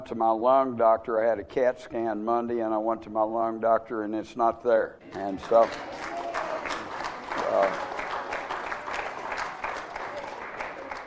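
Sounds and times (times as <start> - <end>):
speech: 0.0 - 6.2
church congregation applauding: 5.0 - 11.0.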